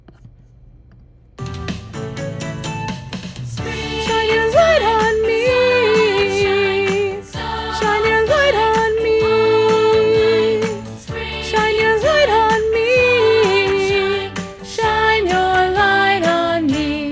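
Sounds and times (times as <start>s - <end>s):
solo with chorus: 3.5s - 17.1s.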